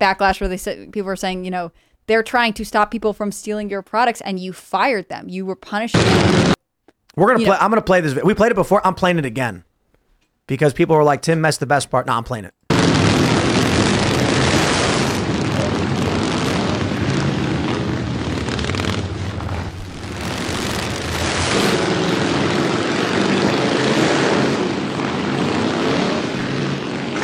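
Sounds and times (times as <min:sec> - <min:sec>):
speech: 0:00.0 - 0:06.6, 0:07.2 - 0:09.7, 0:10.5 - 0:12.6
motorcycle engines roaring, ridden by bikers: 0:13.2 - 0:27.2.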